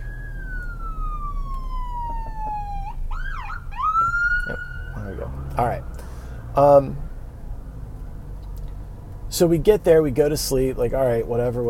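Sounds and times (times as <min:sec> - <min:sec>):
ambulance siren wailing: 0:00.0 - 0:08.4
low rumble of traffic: 0:00.0 - 0:11.6
speech: 0:05.6 - 0:05.9, 0:06.6 - 0:07.0, 0:09.4 - 0:11.6.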